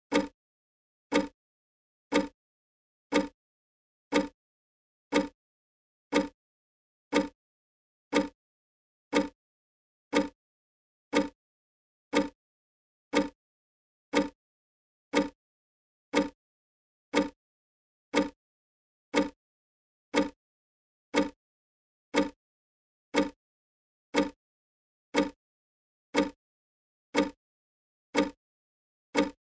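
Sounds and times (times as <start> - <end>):
clock: 0.1 - 0.4, 1.1 - 1.4, 2.1 - 2.4, 3.1 - 3.4, 4.1 - 4.4, 5.1 - 5.4, 6.1 - 6.4, 7.1 - 7.4, 8.1 - 8.4, 9.1 - 9.4, 10.1 - 10.4, 11.1 - 11.4, 12.1 - 12.4, 13.1 - 13.4, 14.1 - 14.4, 15.1 - 15.4, 16.1 - 16.4, 17.1 - 17.4, 18.1 - 18.4, 19.1 - 19.4, 20.1 - 20.4, 21.1 - 21.4, 22.1 - 22.4, 23.1 - 23.4, 24.1 - 24.4, 25.1 - 25.4, 26.1 - 26.4, 27.1 - 27.4, 28.1 - 28.4, 29.1 - 29.4.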